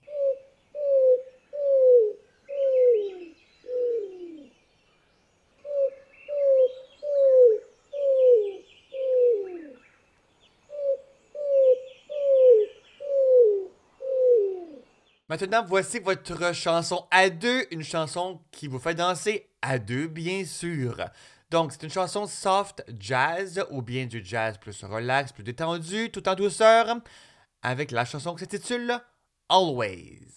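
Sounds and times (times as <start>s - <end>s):
bird of dry brushy open places giving low cooing call notes: 0.0s - 4.7s, 5.6s - 10.0s, 10.7s - 15.0s
faint higher chirps of other birds: 0.0s - 15.3s
speech: 15.3s - 30.3s.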